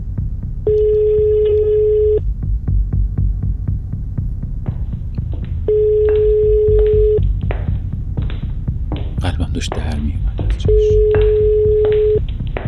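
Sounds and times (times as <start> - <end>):
low rhythmic thumping: 0.0 - 12.6
electronic ringback tones of an outgoing mobile phone call: 0.7 - 2.2, 5.7 - 7.2, 10.6 - 12.2.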